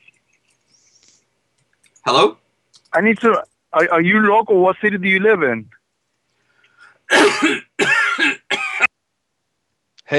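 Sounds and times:
speech: 2.1s - 5.8s, 7.1s - 7.7s
harsh throaty coughing: 7.1s - 8.9s.

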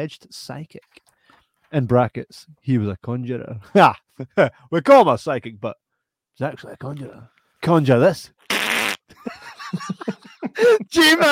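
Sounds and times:
speech: 0.0s - 1.0s, 1.7s - 5.8s, 6.4s - 11.3s
loud raspy fart: 8.5s - 9.1s
laughter: 9.1s - 11.3s.

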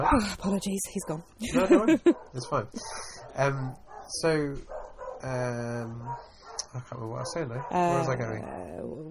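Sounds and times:
speech: 0.0s - 9.0s
dog barking at a delivery: 1.0s - 1.3s, 2.0s - 8.2s
laughter: 1.4s - 3.2s.

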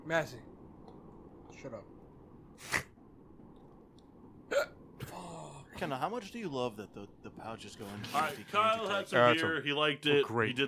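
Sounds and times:
speech: 0.1s - 0.5s, 1.5s - 2.0s, 2.6s - 2.9s, 5.8s - 10.6s
hiccups: 4.5s - 4.8s.

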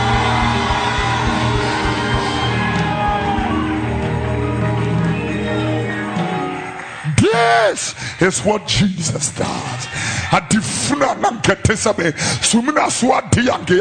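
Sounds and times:
large crowd screaming and shouting in a big room: 0.0s - 8.6s
speech: 7.8s - 13.8s.

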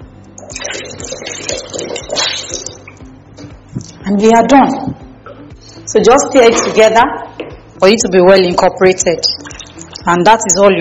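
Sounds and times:
water poured into a mixture: 0.4s - 3.0s
speech: 4.1s - 4.9s, 5.9s - 7.2s, 7.8s - 9.4s, 10.0s - 10.7s.

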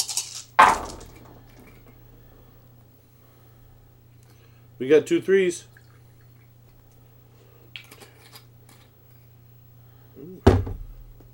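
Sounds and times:
dice rolled at once clattering: 0.0s - 2.3s
speech: 4.8s - 5.7s.

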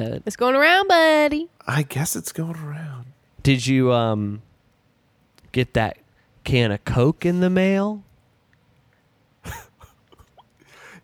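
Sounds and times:
speech: 0.0s - 4.5s, 5.5s - 8.1s, 9.4s - 9.6s
person coughing: 9.4s - 10.4s.

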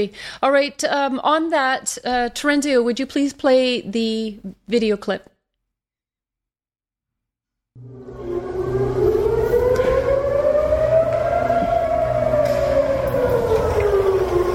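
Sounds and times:
speech: 0.0s - 5.3s
air raid siren wailing in Tel Aviv: 7.8s - 14.5s.

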